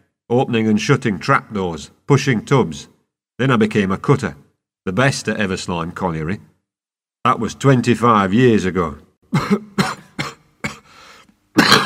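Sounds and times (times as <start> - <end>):
speech: 0.3 - 6.5, 7.2 - 9.7
miner coughing violently from coal dust in the lungs: 9.3 - 11.0, 11.6 - 11.8.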